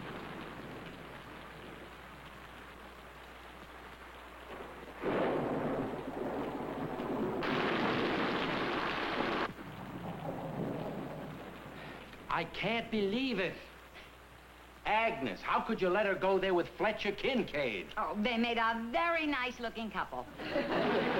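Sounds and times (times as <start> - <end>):
thunder rumbling: 0.0 - 13.0
steady rain: 0.0 - 21.1
speech: 12.4 - 13.7, 14.9 - 21.0
laughter: 20.4 - 21.1.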